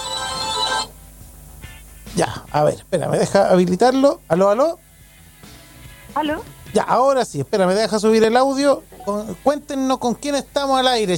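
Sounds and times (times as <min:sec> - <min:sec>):
telephone ringtone signalling an incoming call: 0:00.0 - 0:00.9
speech: 0:02.2 - 0:04.8, 0:06.2 - 0:11.1.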